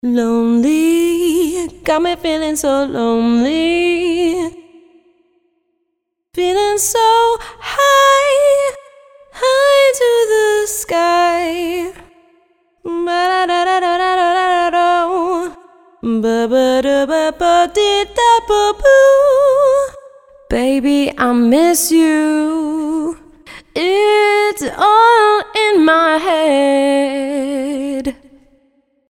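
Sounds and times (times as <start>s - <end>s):
smooth vocal hooks: 0.0s - 5.4s, 6.4s - 28.8s.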